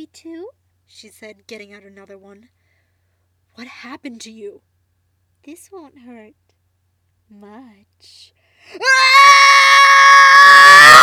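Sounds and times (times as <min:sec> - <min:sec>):
speech: 0:00.0 - 0:02.6, 0:03.6 - 0:04.7, 0:05.4 - 0:06.5, 0:07.3 - 0:09.8
man screaming while falling down stairs: 0:08.8 - 0:11.0.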